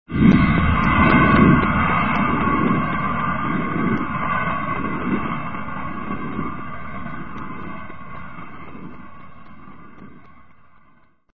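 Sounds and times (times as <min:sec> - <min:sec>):
space storm: 0:00.0 - 0:11.2.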